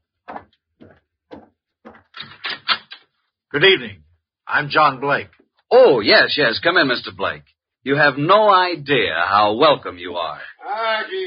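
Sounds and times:
thumps: 0:00.3 - 0:02.8
speech: 0:03.5 - 0:11.2.

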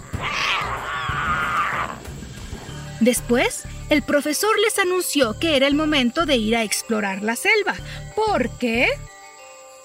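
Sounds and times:
chorus of lion cubs roaring: 0:00.0 - 0:02.2
speech: 0:03.0 - 0:09.1.

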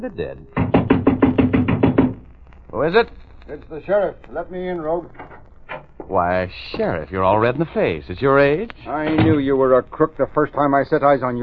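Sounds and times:
speech: 0:00.0 - 0:00.6, 0:02.7 - 0:05.3, 0:06.1 - 0:11.4
loud heavy pounding on a door: 0:00.6 - 0:02.2.

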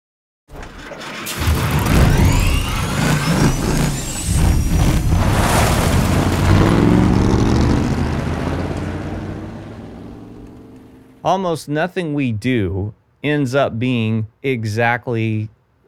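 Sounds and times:
car motor starting up and roaring: 0:01.2 - 0:11.2
belt of a motor sticking out through the hood whining: 0:01.3 - 0:05.1
speech: 0:11.2 - 0:15.6.

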